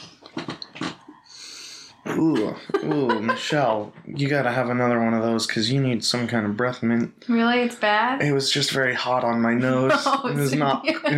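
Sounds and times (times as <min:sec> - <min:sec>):
person sniffing at someone's breath: 0:01.2 - 0:02.2
soft breathy hiss: 0:01.2 - 0:02.2
laughter: 0:02.1 - 0:04.4, 0:09.6 - 0:11.1
speech: 0:02.2 - 0:11.1.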